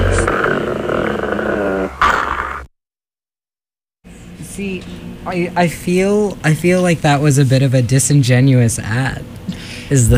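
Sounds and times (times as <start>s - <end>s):
dog growling and yipping: 0.0s - 2.7s
speech: 4.6s - 10.1s.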